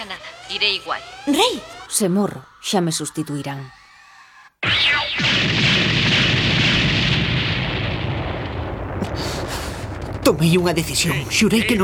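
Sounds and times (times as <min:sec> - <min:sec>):
speech: 0:00.0 - 0:03.8, 0:10.3 - 0:11.8
quick falling whine: 0:03.8 - 0:08.3
powerful weapon blast: 0:04.6 - 0:10.2
loud sustained roaring rumble: 0:05.3 - 0:11.5.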